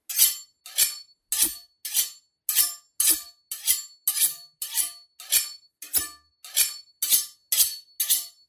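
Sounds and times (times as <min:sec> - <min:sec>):
knives sharpened against each other: 0:00.1 - 0:08.3.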